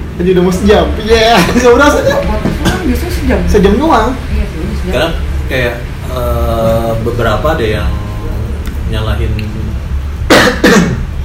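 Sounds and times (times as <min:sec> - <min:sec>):
speech: 0:00.2 - 0:08.0, 0:08.9 - 0:09.6
person coughing: 0:10.3 - 0:11.1.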